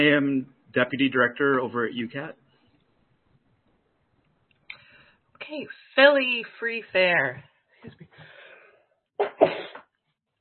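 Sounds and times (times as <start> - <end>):
speech: 0.0 - 2.4, 5.4 - 8.3, 9.2 - 9.8
person sneezing: 9.2 - 9.8.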